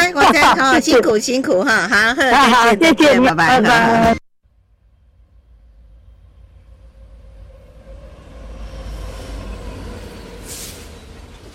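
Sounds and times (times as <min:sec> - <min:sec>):
speech: 0:00.5 - 0:04.2
train running on rails: 0:04.5 - 0:11.5.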